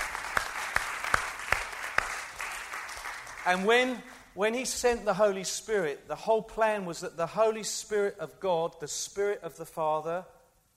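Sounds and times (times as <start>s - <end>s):
audience applause: 0.0s - 4.2s
louder claps: 0.0s - 4.3s
speech: 3.4s - 10.4s.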